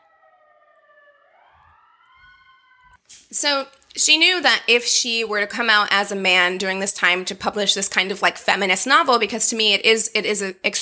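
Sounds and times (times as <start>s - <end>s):
emergency vehicle siren passing outside: 0.0s - 3.0s
speech: 3.1s - 10.7s.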